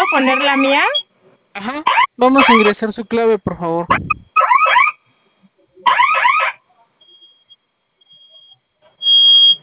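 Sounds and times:
fire alarm blaring in warbling electronic bursts: 0.0s - 1.1s, 1.9s - 2.8s, 3.9s - 5.0s, 5.9s - 9.6s
speech: 0.1s - 1.0s, 1.6s - 4.2s.

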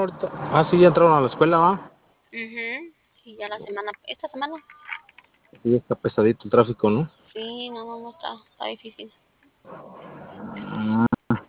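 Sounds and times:
speech: 0.0s - 11.1s
cow mooing: 9.7s - 11.1s.

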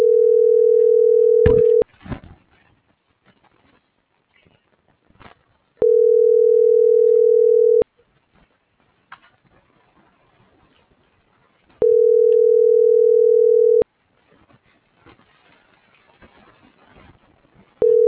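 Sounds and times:
ringback tone of an unanswered telephone call: 0.0s - 1.8s, 5.8s - 7.8s, 11.8s - 13.8s, 17.8s - 18.0s
faint rustling: 0.5s - 18.0s.

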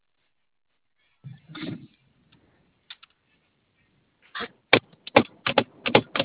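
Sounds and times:
rapid uneven typing on a computer keyboard: 5.1s - 6.2s.

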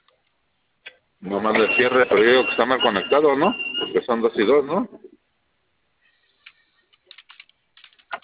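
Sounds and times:
speech: 1.2s - 5.0s
typing on a computer keyboard: 6.4s - 8.2s.

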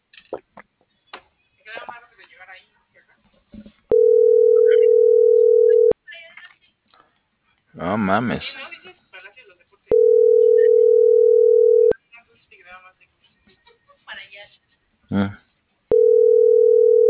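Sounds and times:
telephone ringback tone from an unanswered call: 3.9s - 6.0s, 9.9s - 12.0s, 15.9s - 17.0s
speech: 8.0s - 8.6s.

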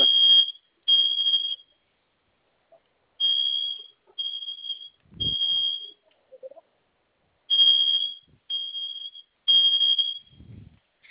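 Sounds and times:
security panel alarm sounding during test: 0.0s - 1.8s, 3.2s - 6.0s, 7.5s - 10.6s.

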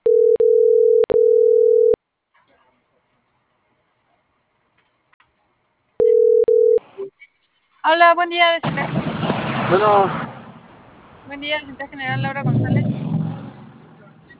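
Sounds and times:
telephone line tone while a call is being placed: 0.0s - 2.0s, 6.0s - 6.8s
speech: 7.9s - 9.1s, 9.7s - 10.2s, 11.3s - 13.0s.

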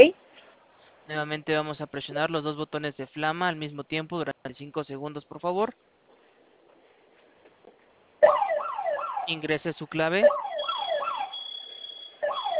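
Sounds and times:
speech: 1.1s - 6.0s, 9.3s - 10.4s
electronic security alarm siren: 8.2s - 9.4s, 10.2s - 12.5s.

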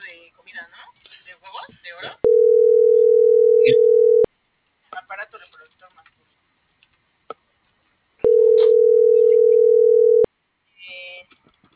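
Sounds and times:
steady telephone call tone before voicemail answers: 2.2s - 4.3s, 8.2s - 10.3s.

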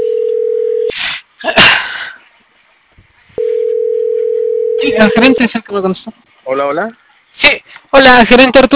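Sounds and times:
telephone line tone during a redialed call: 0.0s - 0.9s, 3.4s - 5.4s
speech: 4.9s - 8.7s.

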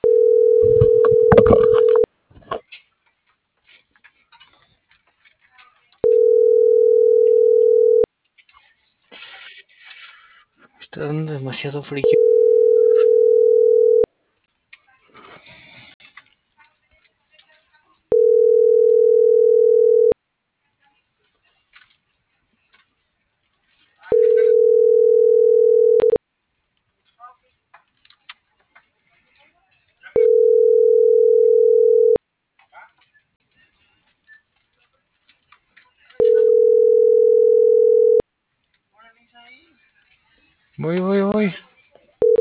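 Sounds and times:
telephone dial tone beeping while placing a call: 0.0s - 2.1s, 6.0s - 8.1s, 12.0s - 14.1s, 18.1s - 20.2s, 24.1s - 26.2s, 30.2s - 32.2s, 36.2s - 38.2s
faint scattered noises: 0.0s - 11.1s, 12.1s - 42.3s
speech: 11.6s - 12.3s.

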